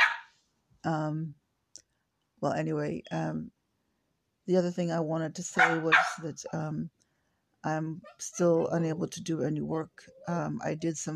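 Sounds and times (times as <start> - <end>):
dog barking: 0.0 - 0.4, 5.6 - 6.2
speech: 0.8 - 1.4, 2.4 - 3.6, 4.5 - 7.0, 7.6 - 11.1.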